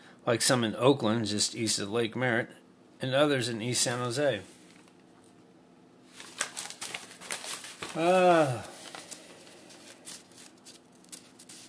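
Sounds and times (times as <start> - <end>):
speech: 0.2 - 4.6, 8.0 - 8.7
paper pages being turned and handled: 6.1 - 11.6
short voiced hum: 7.9 - 8.9.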